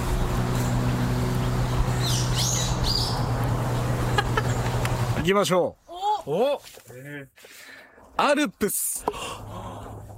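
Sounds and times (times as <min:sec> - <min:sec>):
bird chirps and trills: 0:00.0 - 0:05.0
speech: 0:05.3 - 0:09.6.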